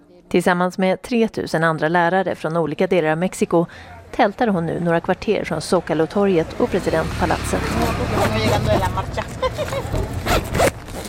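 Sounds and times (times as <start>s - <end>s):
speech: 0.3s - 9.4s
tent zipper being pulled open: 7.6s - 8.9s, 10.0s - 11.0s
laughter: 7.8s - 10.4s.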